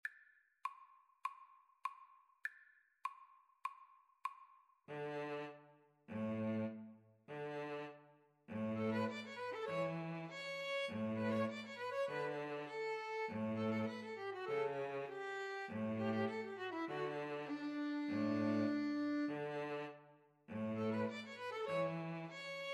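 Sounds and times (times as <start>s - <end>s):
neopolitan string trio: 4.9s - 22.7s.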